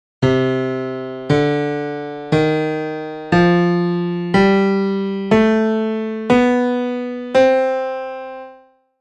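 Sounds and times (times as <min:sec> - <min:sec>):
melodic minor scale: 0:00.2 - 0:08.8.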